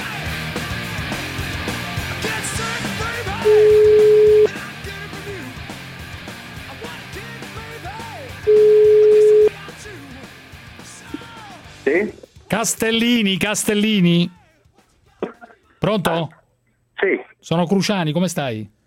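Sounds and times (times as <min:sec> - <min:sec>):
music: 0:00.0 - 0:15.9
ringing tone of an outgoing telephone call: 0:03.4 - 0:04.5, 0:08.5 - 0:09.5
speech: 0:12.6 - 0:14.4, 0:15.8 - 0:16.4, 0:17.0 - 0:18.8.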